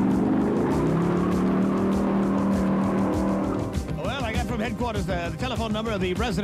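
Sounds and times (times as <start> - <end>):
ambulance engine revving and speeding off: 0.0 - 4.0
speech: 4.6 - 6.4.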